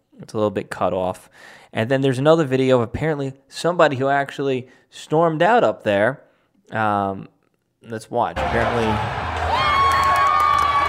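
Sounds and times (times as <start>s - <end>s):
speech: 0.2s - 9.2s
crowd cheering and whooping: 8.4s - 10.8s.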